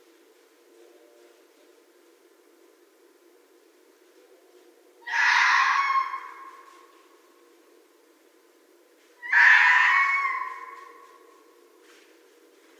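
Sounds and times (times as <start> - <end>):
red fox screaming: 5.0 - 6.9, 9.2 - 11.2.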